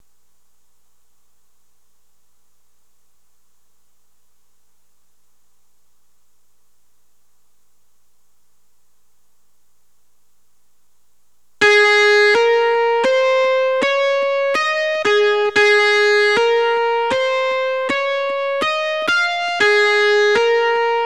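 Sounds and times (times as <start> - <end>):
guitar lead line: 11.6 - 21.0.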